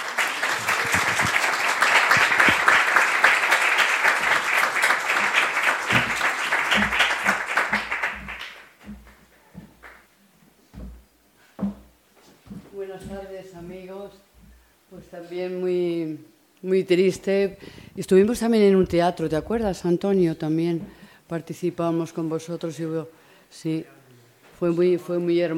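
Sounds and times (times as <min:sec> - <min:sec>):
audience applauding: 0:00.0 - 0:10.0
speech: 0:15.1 - 0:24.0, 0:24.6 - 0:25.5.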